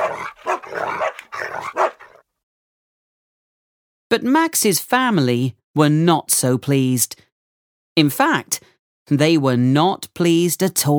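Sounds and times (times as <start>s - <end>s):
dogs barking and growling: 0.0s - 2.3s
speech: 4.1s - 7.2s, 8.0s - 10.9s.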